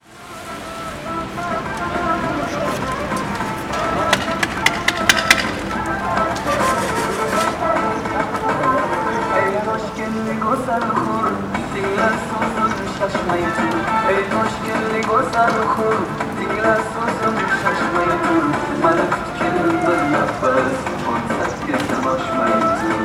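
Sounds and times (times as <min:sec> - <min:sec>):
Uzbek construction workers singing a song: 0:00.0 - 0:23.0.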